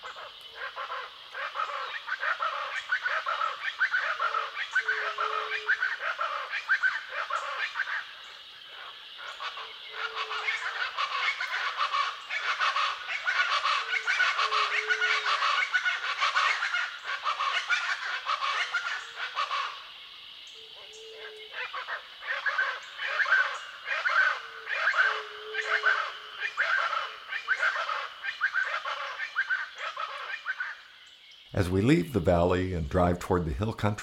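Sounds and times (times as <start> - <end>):
several pairs of chachalacas calling and cackling: 0.0 - 34.0
speech: 31.6 - 34.0.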